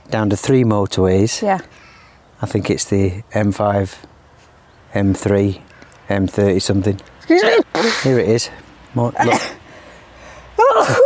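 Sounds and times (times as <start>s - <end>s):
speech: 0.1s - 4.1s, 4.9s - 9.6s, 10.8s - 11.0s
person sneezing: 7.3s - 8.2s, 9.2s - 9.6s.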